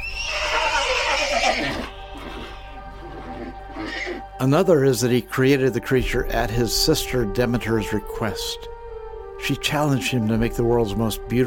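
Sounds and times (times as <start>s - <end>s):
horse neighing: 0.0s - 4.2s
speech: 4.4s - 8.7s, 9.5s - 11.4s.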